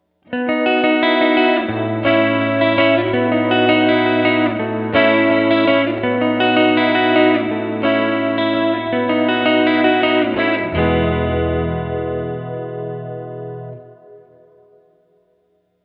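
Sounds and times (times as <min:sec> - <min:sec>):
BigSky room reverb: 0:00.0 - 0:15.8.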